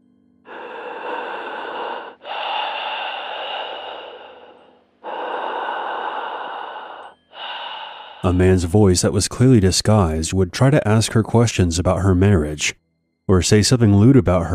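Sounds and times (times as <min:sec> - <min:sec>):
caller breathing heavily over a phone line: 0:00.5 - 0:09.0
speech: 0:08.2 - 0:14.5.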